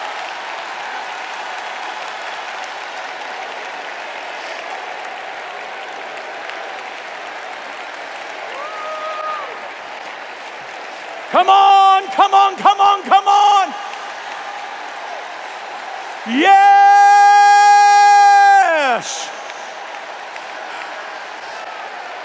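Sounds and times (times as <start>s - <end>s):
large crowd applauding in worship: 0.0s - 22.2s.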